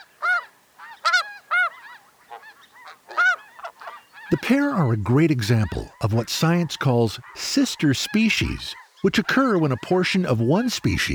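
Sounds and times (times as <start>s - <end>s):
flock of snow geese and Ross's geese honking in flight: 0.0s - 11.1s
speech: 4.3s - 11.1s.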